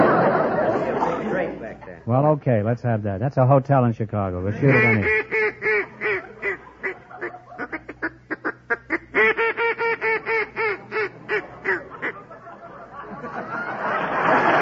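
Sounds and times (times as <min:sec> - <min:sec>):
laughter: 0:00.0 - 0:02.0, 0:04.4 - 0:08.2, 0:09.3 - 0:14.5
speech: 0:01.4 - 0:05.4
duck call blown in loud nasal quacks: 0:04.6 - 0:12.3.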